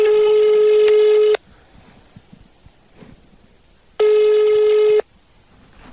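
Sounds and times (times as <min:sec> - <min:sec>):
phone ringback tone through a phone earpiece: 0:00.0 - 0:01.4, 0:04.0 - 0:05.1.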